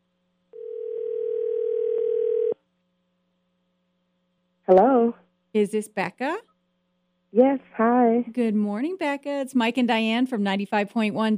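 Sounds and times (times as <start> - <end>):
phone line ringing during an outgoing call: 0.6 - 2.6
speech: 4.7 - 6.5, 7.3 - 11.3.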